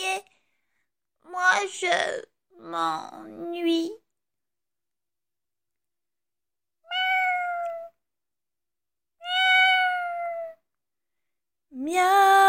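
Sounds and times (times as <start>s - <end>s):
speech: 1.6s - 4.0s, 11.7s - 12.3s
cat meowing: 6.8s - 8.0s, 9.2s - 10.6s.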